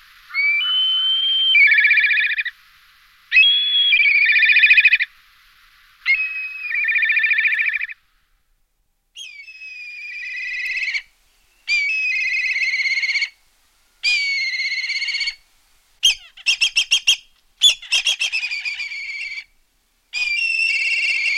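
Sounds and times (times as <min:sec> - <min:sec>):
black kite Milvus migrans calling with quavering notes and stuttering pulses: 0:00.3 - 0:02.6, 0:03.3 - 0:05.1, 0:06.0 - 0:08.0, 0:09.2 - 0:13.4, 0:14.0 - 0:15.4, 0:16.0 - 0:19.5, 0:20.1 - 0:21.3.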